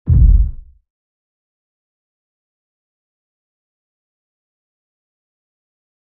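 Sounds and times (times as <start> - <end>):
bass impact: 0.1 - 0.8.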